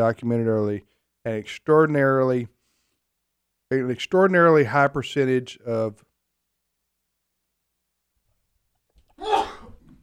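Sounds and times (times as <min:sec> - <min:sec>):
speech: 0:00.0 - 0:02.6, 0:03.7 - 0:06.1
radio host sneezing during a live national broadcast: 0:09.2 - 0:09.8.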